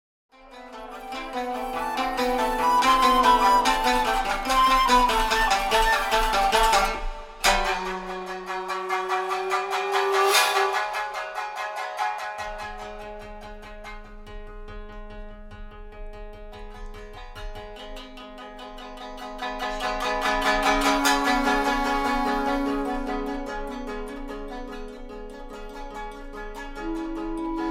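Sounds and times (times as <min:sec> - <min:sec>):
21-string koto: 0:00.3 - 0:27.7
shamisen: 0:00.3 - 0:27.7
shakuhachi: 0:00.5 - 0:13.9, 0:19.2 - 0:27.7.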